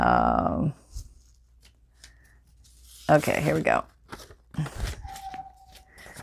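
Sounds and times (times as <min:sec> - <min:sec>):
thin paper crinkling as it is folded: 0:00.9 - 0:06.2
speech: 0:03.1 - 0:04.8
faint steady whistling tone: 0:05.0 - 0:06.2.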